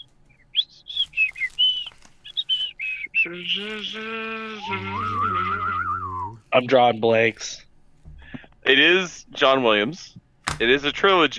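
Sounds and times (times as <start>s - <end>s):
person whistling a bright clear melody: 0.9s - 6.4s
buzzy hummed tone: 2.8s - 10.0s
speech: 3.3s - 7.6s, 8.7s - 11.3s.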